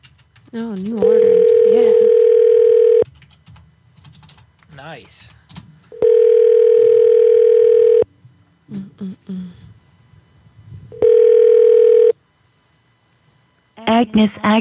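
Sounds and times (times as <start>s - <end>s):
speech: 0.5s - 2.2s, 4.9s - 5.4s, 14.0s - 14.5s
telephone call ringback tone ringing through to voicemail: 1.0s - 3.0s, 6.0s - 8.1s, 11.0s - 12.2s.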